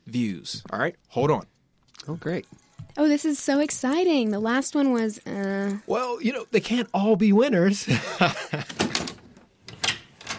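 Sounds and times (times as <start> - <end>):
speech: 0.1 - 8.8
laughter: 7.9 - 8.8
roof door opening with rattling clatter: 8.7 - 10.3.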